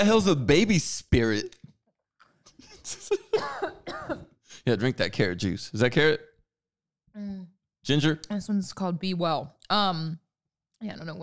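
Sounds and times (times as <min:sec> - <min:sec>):
speech: 0:00.0 - 0:01.6, 0:02.8 - 0:03.6, 0:04.6 - 0:06.3, 0:07.2 - 0:10.2, 0:10.8 - 0:11.2
person coughing with something caught in the throat: 0:03.1 - 0:04.4
person clearing throat: 0:03.4 - 0:04.3.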